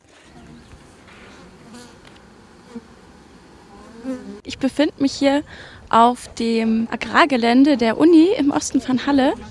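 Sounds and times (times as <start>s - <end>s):
honey bees buzzing on agricultural grounds in Halle: 0.1s - 5.4s
speech: 4.4s - 9.4s.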